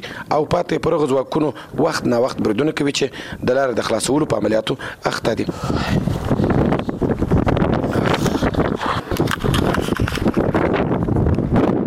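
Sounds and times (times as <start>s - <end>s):
speech: 0.2s - 6.2s
strong wind blowing dust across an open area: 4.2s - 11.8s
wind gusts rumbling and rattling against the microphone: 5.2s - 11.8s.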